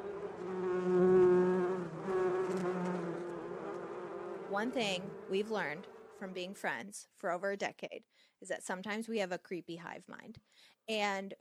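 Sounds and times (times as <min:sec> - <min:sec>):
bees buzzing: 0:00.0 - 0:06.6
speech: 0:04.6 - 0:11.4.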